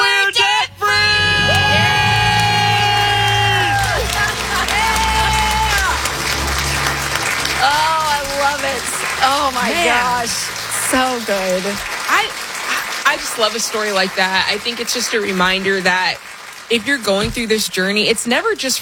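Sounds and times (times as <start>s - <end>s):
group of people screaming and cheering in celebration: 0.8s - 13.1s
crowd noise: 0.8s - 17.0s
applause: 1.3s - 18.8s
speech: 10.2s - 12.4s, 13.1s - 18.8s.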